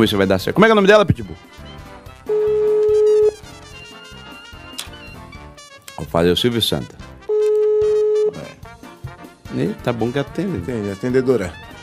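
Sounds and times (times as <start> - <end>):
speech: 0.0 - 1.6, 6.1 - 7.1, 9.5 - 11.7
ringback tone on an outgoing phone call: 2.3 - 4.0, 7.3 - 8.5.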